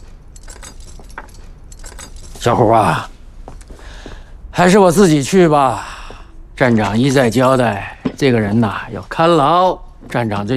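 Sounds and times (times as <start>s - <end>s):
ring of keys jingling: 0.0s - 2.6s
low hum: 0.0s - 10.5s
speech: 2.4s - 3.1s, 4.6s - 5.9s, 6.6s - 10.5s.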